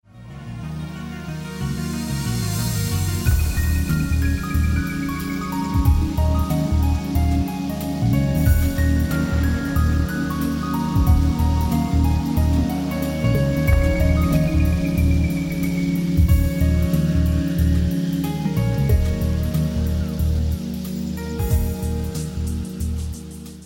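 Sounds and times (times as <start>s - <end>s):
inspirational piano music: 0.4s - 23.6s.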